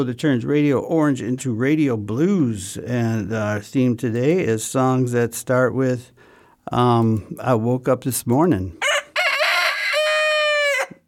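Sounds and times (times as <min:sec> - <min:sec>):
speech: 0:00.0 - 0:08.9
rooster crowing: 0:08.8 - 0:11.0.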